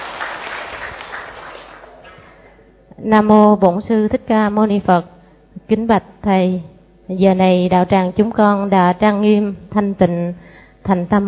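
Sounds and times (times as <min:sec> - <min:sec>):
crowd applauding to welcome a monk: 0:00.0 - 0:02.6
speech: 0:03.0 - 0:05.1, 0:05.7 - 0:11.2.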